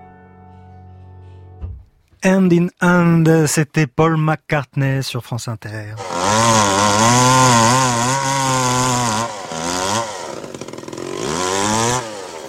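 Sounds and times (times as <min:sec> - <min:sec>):
speech: 0:02.2 - 0:07.7
chainsaw engine running and revving: 0:06.0 - 0:12.4.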